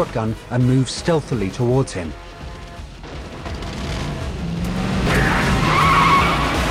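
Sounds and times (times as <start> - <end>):
speech: 0.0 - 2.2
tires skidding: 2.6 - 6.6
convertible sports car roaring off: 2.7 - 6.6.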